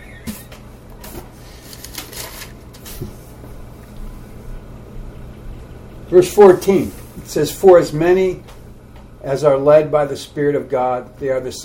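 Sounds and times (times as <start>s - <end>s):
low steady hum: 0.0s - 11.6s
thin sticking paper pages being pulled apart and turned: 1.0s - 3.3s
speech: 3.0s - 3.2s, 6.1s - 8.5s, 9.2s - 11.6s.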